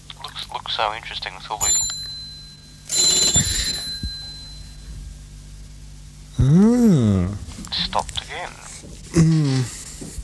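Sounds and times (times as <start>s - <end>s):
low hum: 0.0s - 10.2s
speech: 0.6s - 1.8s
telephone bell ringing in a jangling burst: 1.6s - 4.9s.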